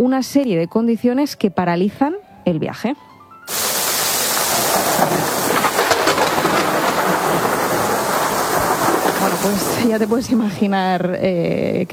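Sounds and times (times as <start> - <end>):
speech: 0.0 - 3.6, 9.4 - 11.9
heavy rain pouring in a storm: 3.5 - 11.2
low thunder rumbling: 3.5 - 11.9.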